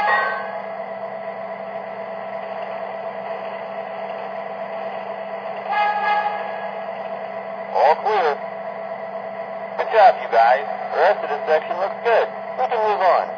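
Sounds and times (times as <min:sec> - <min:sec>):
sustained horn-like tone of road train: 0:00.0 - 0:00.8, 0:05.7 - 0:06.8
road train heavy engine drone passing: 0:00.0 - 0:13.3.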